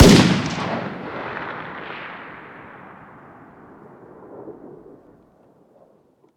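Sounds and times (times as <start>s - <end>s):
distant .308 rifle fire outdoors: 0.0s - 4.8s.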